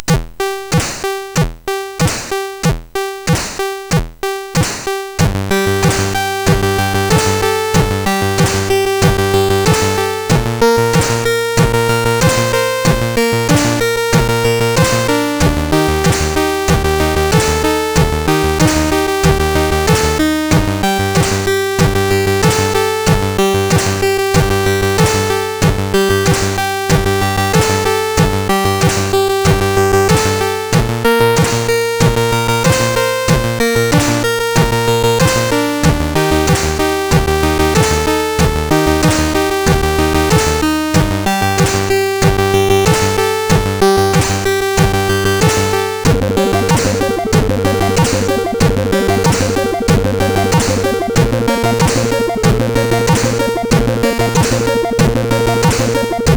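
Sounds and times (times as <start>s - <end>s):
reggae music on MOS6581R4 SID chip: 0.0s - 56.3s.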